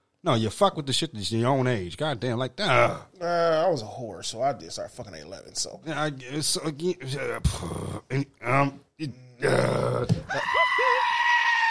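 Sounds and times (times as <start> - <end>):
speech: 0.2 - 11.0
goat screaming: 10.3 - 11.6.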